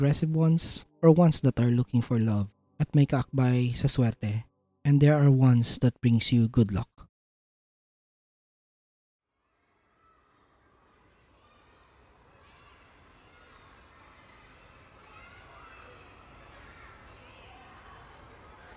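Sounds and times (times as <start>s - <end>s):
speech: 0.0s - 7.0s
crowd of children shouting, laughing and chattering at a school: 9.4s - 18.7s.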